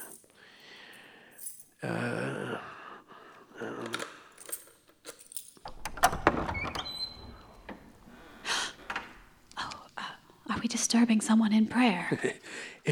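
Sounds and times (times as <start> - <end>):
breathy sounds: 0.1 - 1.6, 2.3 - 4.6, 8.0 - 9.0, 12.4 - 12.9
key rattling and clicking in a lock: 3.9 - 7.2
metallic jingles: 4.4 - 5.7
heavy balcony door clunking and scraping open: 5.6 - 8.0, 8.8 - 9.3
speech: 10.9 - 12.9.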